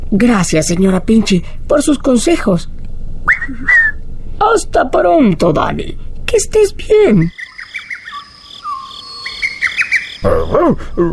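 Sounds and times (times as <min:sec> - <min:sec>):
speech: 0:00.1 - 0:02.8, 0:03.5 - 0:03.8, 0:04.4 - 0:07.4, 0:10.2 - 0:11.1
soft insect-like trill: 0:06.3 - 0:11.1
bird chirping in high-pitched tweets: 0:07.0 - 0:11.1.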